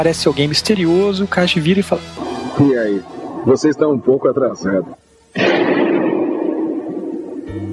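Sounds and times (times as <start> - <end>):
speech: 0.0 - 5.8
gunshot with long rumbling echo: 5.4 - 7.4.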